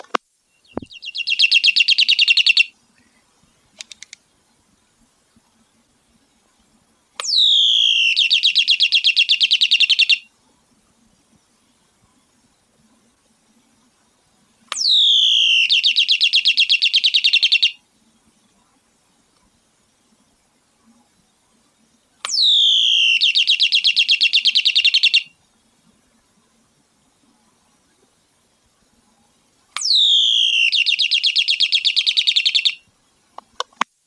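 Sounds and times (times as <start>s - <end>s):
electric plug-in toy bird chirping in a house: 0.0s - 2.7s, 7.2s - 10.2s, 14.7s - 17.8s, 22.3s - 25.3s, 29.8s - 32.8s.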